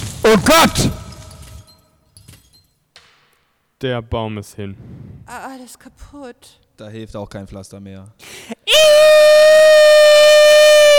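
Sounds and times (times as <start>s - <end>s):
speech: 0.4s - 1.0s, 3.8s - 8.6s
person wailing like a siren: 8.7s - 10.9s.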